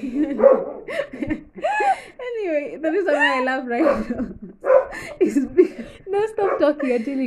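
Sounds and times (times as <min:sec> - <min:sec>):
laughter: 0:00.0 - 0:07.2
speech: 0:00.2 - 0:00.7, 0:03.4 - 0:04.4, 0:06.7 - 0:07.2
dog barking and yelping: 0:00.3 - 0:00.9, 0:03.8 - 0:05.0, 0:06.4 - 0:06.8.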